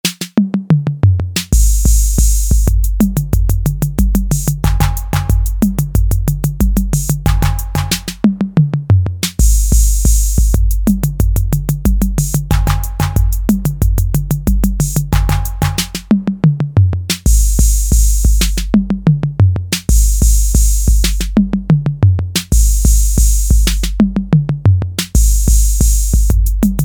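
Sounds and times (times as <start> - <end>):
Roland TR-808 drum machine fill: 1.1 - 26.8.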